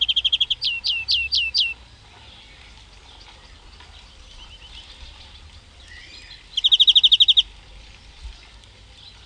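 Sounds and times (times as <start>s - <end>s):
European greenfinch trilling clear evenly spaced notes: 0.0s - 1.8s, 2.4s - 7.5s.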